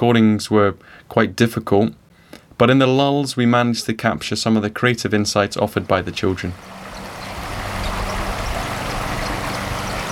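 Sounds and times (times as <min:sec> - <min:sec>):
speech: 0:00.0 - 0:02.0, 0:02.6 - 0:06.8
Water of Leith river flowing under a footbridge in autumn: 0:05.8 - 0:10.1.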